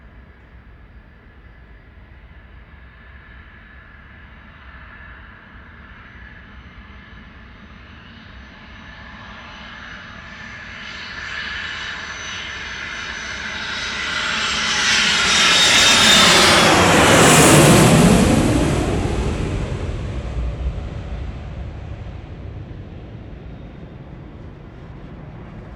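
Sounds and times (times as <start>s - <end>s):
airport ambience: 15.2s - 25.7s.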